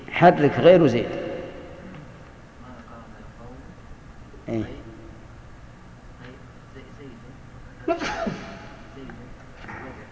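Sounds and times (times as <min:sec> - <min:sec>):
speech: 0:00.2 - 0:01.2
sneeze: 0:08.0 - 0:08.7.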